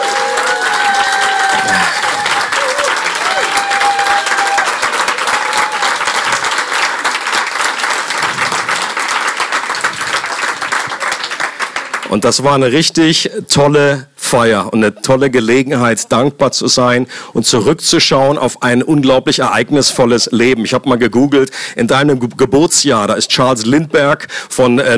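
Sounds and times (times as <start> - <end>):
faint cheers: 0.0 - 6.4
audience applauding a member turning 90: 0.0 - 12.2
speech: 12.1 - 24.9.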